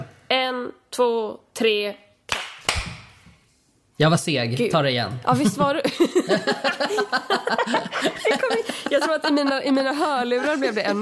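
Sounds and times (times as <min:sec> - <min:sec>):
speech: 0:00.5 - 0:02.0, 0:04.0 - 0:10.9
sharp hand claps to sync recording start: 0:02.3 - 0:03.2
laughter: 0:05.3 - 0:10.9.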